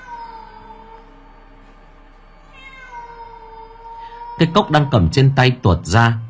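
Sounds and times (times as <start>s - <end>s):
black cat meowing at night: 0.0s - 1.1s, 2.5s - 5.4s
speech: 4.4s - 6.2s.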